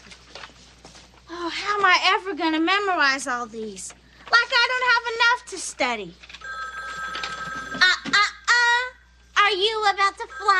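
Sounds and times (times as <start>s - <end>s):
speech: 1.5s - 6.3s, 9.5s - 10.5s
telephone ringing with an electronic tone: 6.4s - 7.9s, 10.0s - 10.5s.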